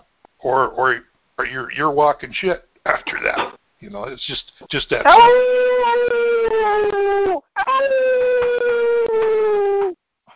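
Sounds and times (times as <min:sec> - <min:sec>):
speech: 0:00.4 - 0:08.2
wolf-like howls: 0:05.0 - 0:10.0.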